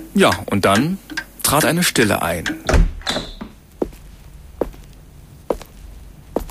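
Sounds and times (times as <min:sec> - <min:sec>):
speech: 0:00.2 - 0:02.8
door creaking open: 0:02.6 - 0:03.6
footsteps: 0:03.3 - 0:06.4.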